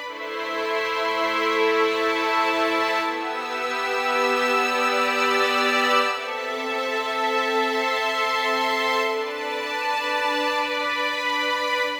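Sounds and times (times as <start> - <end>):
violin ensemble playing film music: 0.0 - 11.9.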